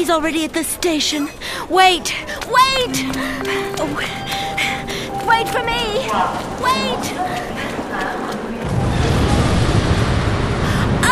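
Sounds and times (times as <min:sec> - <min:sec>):
speech: 0:00.0 - 0:08.3
explosion with deep heavy rumble: 0:08.6 - 0:11.1.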